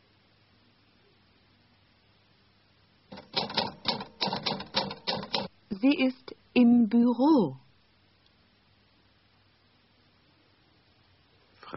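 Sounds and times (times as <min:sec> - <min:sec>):
mechanical typewriter keys clacking: 0:03.1 - 0:05.5
speech: 0:05.8 - 0:07.6.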